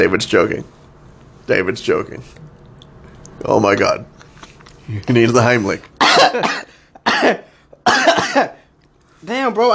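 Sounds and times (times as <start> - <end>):
speech: 0.0 - 0.8, 1.5 - 2.5, 3.4 - 4.2, 4.9 - 8.6, 9.2 - 9.7
person coughing: 6.0 - 8.7.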